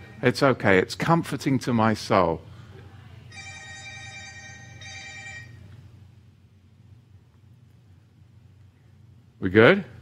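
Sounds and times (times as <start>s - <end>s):
steady low hum: 0.0s - 10.0s
speech: 0.2s - 2.5s, 9.4s - 10.0s
flip phone ringing with a bright electronic tone: 3.3s - 5.6s.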